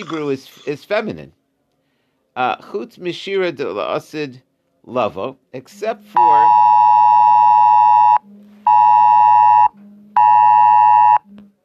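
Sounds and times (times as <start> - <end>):
speech: 0.0 - 1.4, 2.4 - 6.5
cell phone child abduction alert tone: 6.2 - 11.3.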